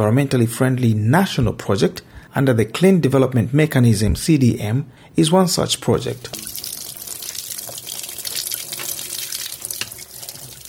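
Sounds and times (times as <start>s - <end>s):
speech: 0.0s - 6.5s
solar-heated hot water pouring from a tap: 6.1s - 10.6s.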